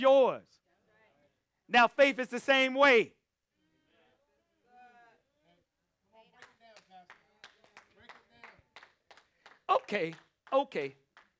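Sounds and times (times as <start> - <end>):
speech: 0.0 - 0.6, 1.7 - 3.2, 9.7 - 11.0
group of people clapping: 6.3 - 11.3.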